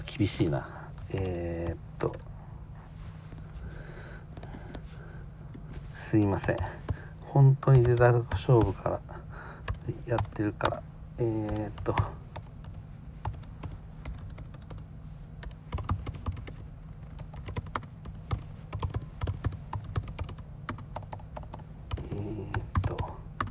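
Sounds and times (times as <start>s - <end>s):
low steady hum: 0.0s - 23.4s
speech: 0.2s - 2.3s, 6.1s - 9.1s, 9.9s - 12.2s
typing on MacBook Air laptop keys: 7.7s - 8.8s, 9.6s - 14.8s, 15.4s - 23.4s.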